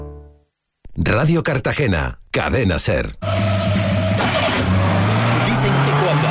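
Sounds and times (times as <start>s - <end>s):
speech: 1.1s - 3.5s
car engine fitted with a Distribat battery revving: 3.3s - 6.2s.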